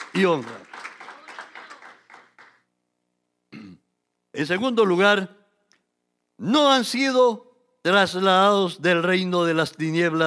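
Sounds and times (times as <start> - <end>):
congregation clapping in rhythmic bursts: 0.0 - 2.7
speech: 0.2 - 0.6, 4.4 - 5.4, 6.4 - 10.2.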